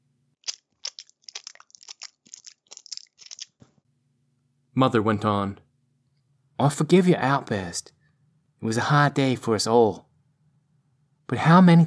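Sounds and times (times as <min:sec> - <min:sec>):
loud wet crunchy chewing of food: 0:00.4 - 0:03.7
speech: 0:04.8 - 0:05.6, 0:06.6 - 0:08.0, 0:08.6 - 0:10.1, 0:11.3 - 0:11.8.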